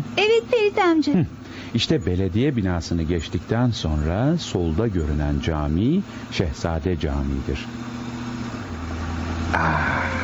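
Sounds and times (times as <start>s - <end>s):
low engine rumble of passing vehicles in city street traffic: 0.0s - 10.2s
speech: 0.2s - 7.9s, 9.5s - 10.2s.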